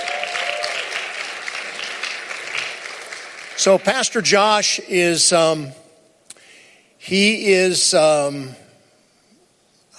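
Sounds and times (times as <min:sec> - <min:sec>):
large crowd applauding: 0:00.0 - 0:04.3
speech: 0:03.6 - 0:05.8, 0:07.1 - 0:08.6.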